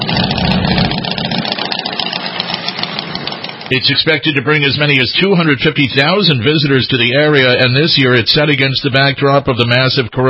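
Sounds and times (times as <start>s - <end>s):
motorcycle engines idling at a rally: 0.0s - 7.6s
speech: 3.7s - 10.2s.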